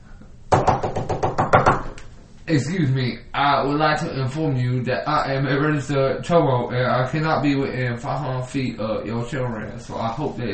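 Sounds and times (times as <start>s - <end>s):
firm knocks on a door: 0.5s - 2.0s
speech: 2.5s - 10.5s.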